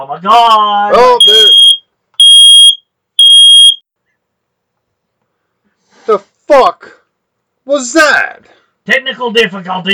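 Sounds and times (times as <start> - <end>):
speech: 0.0 - 1.3, 6.1 - 7.0, 7.7 - 9.9
smoke alarm blaring piercing electronic tones: 1.2 - 3.8.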